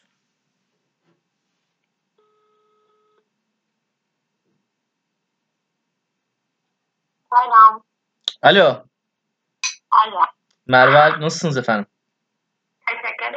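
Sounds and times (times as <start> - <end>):
telephone ringing tone during a call: 2.2 - 3.2
speech: 7.4 - 8.9, 10.0 - 11.9.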